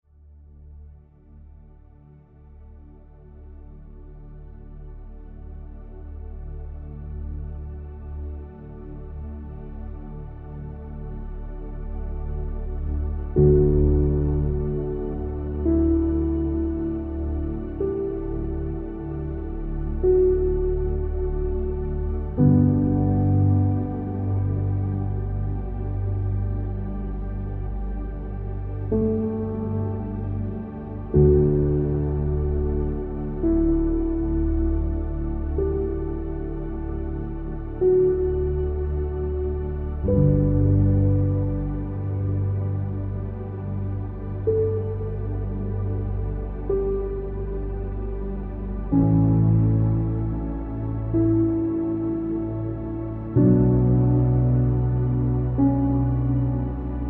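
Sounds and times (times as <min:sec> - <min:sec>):
inspiring ambient soundscape: 0:00.1 - 0:57.0.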